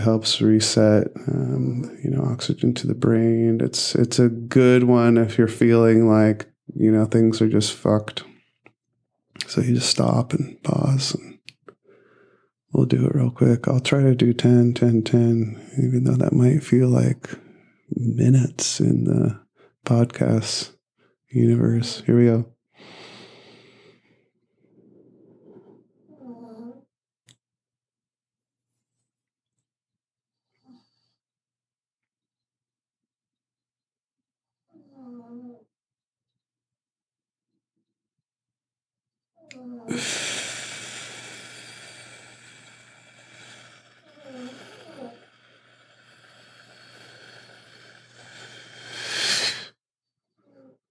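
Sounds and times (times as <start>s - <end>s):
speech: 0.0s - 8.3s, 9.4s - 11.3s, 12.7s - 23.0s, 39.9s - 40.3s
Shih Tzu dog snoring: 34.7s - 35.6s, 43.3s - 49.1s.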